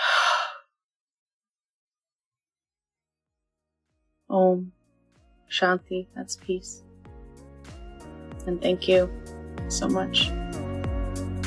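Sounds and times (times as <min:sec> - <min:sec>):
deep clearing breath exhaled after a nasal inhale during yoga: 0:00.0 - 0:00.6
speech: 0:04.3 - 0:04.8, 0:05.5 - 0:06.9, 0:08.4 - 0:10.4.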